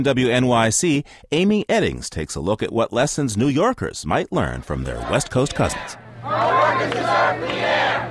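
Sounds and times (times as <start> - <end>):
speech: 0.0 - 8.1
large crowd at a public hearing shouting and cheering: 4.7 - 8.1.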